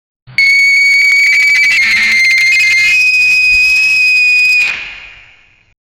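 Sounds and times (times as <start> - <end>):
sudden distorted telephone sound: 0.4 - 4.8.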